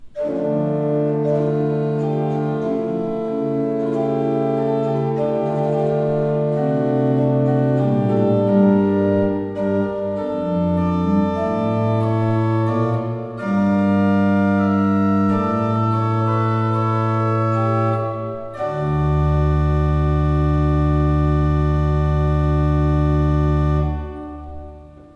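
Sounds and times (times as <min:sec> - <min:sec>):
used organ playing: 0:00.0 - 0:25.1.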